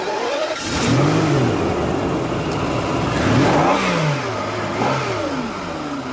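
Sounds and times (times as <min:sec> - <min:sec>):
car engine starting and revving: 0:00.0 - 0:06.1.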